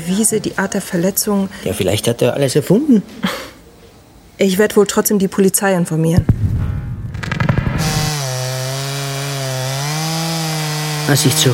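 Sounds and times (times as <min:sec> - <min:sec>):
speech: 0:00.0 - 0:03.5, 0:04.4 - 0:06.4, 0:11.1 - 0:11.5
chainsaw running at the back of a barn on a farm: 0:07.8 - 0:11.5.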